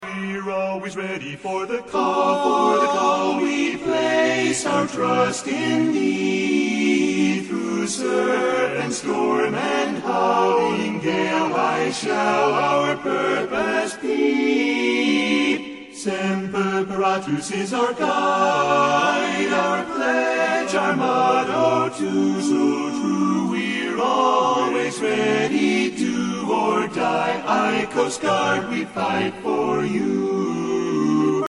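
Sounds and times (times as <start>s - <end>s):
chorus singing a medley: 0.1s - 31.4s.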